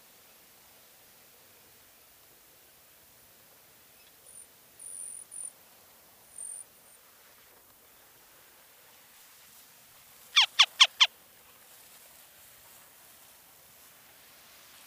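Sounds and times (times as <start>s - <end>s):
Circus hudsonius northern harrier calling: 10.4s - 11.1s.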